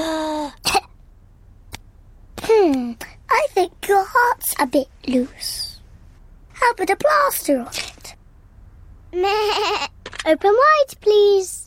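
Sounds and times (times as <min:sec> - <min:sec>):
child coughing while playing doctors and nurses: 0:00.5 - 0:01.0
speech: 0:03.6 - 0:05.6, 0:06.6 - 0:07.9, 0:09.1 - 0:11.6.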